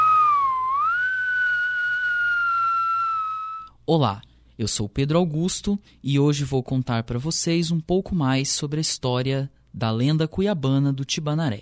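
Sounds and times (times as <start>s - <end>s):
person whistling one long clear note: 0.0s - 3.8s
speech: 3.9s - 11.6s.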